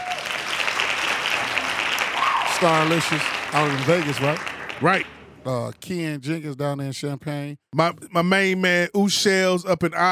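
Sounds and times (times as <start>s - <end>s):
hand clap applause: 0.0s - 5.2s
speech: 2.6s - 10.1s.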